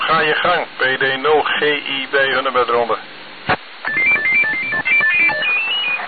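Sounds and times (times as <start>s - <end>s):
speech: 0.1s - 3.1s
phone ringtone with short electronic notes: 3.8s - 6.0s.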